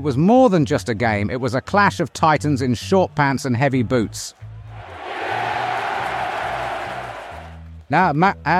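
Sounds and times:
speech: 0.0 - 4.4, 7.9 - 8.5
large stadium crowd in Greater Manchester roaring and cheering: 4.4 - 7.6.

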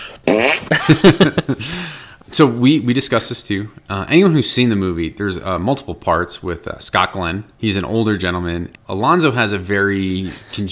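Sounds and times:
hand fart noise: 0.0 - 1.0
speech: 0.3 - 10.7.

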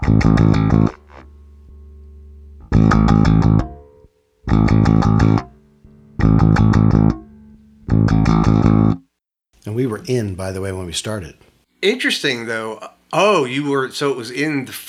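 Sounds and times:
electric bass guitar riff in a dry tone with distortion off: 0.0 - 9.1
speech: 10.1 - 14.8.

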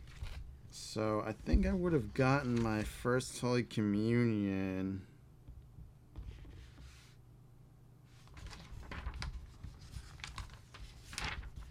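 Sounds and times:
book pages turning: 0.0 - 0.5, 1.3 - 3.0, 8.2 - 11.6
low steady hum: 0.0 - 11.6
speech: 0.8 - 5.1.

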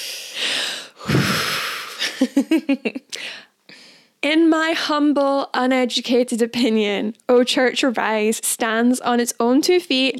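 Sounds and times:
deep breath: 0.0 - 2.0, 3.1 - 4.2
speech: 2.2 - 3.0, 4.2 - 10.1.

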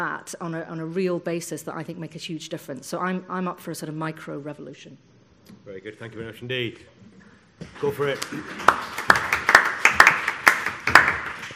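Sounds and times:
speech: 0.0 - 9.2
sparse clapping from a small audience: 8.1 - 11.5.

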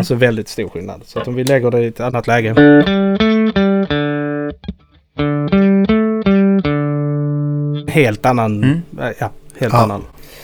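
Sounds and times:
speech: 0.0 - 3.2, 8.0 - 10.2
electric guitar with steel strings on a different pickup setting strumming chords: 2.5 - 9.6.

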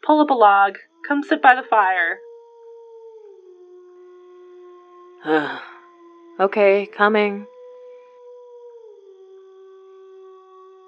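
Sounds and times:
speech: 0.1 - 2.2, 5.2 - 5.7, 6.4 - 7.5
wolf howling at a campsite: 0.3 - 10.8.

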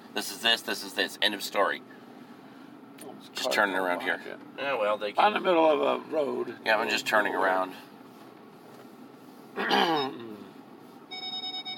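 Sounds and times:
speech: 0.2 - 2.0, 3.0 - 7.9, 9.6 - 10.2
car reversing sensor beeping: 11.1 - 11.7.

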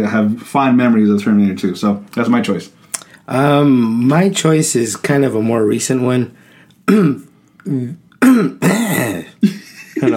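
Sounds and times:
speech: 0.0 - 10.1
rough throaty coughing: 6.9 - 9.6.

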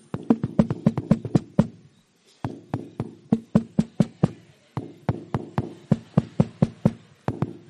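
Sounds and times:
loud knocking on a door: 0.2 - 1.8, 2.5 - 7.6.

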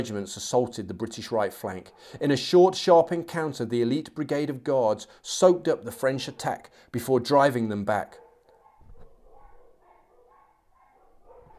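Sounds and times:
speech: 0.0 - 8.2
dogs barking outside a house: 1.5 - 2.2, 8.1 - 11.5.

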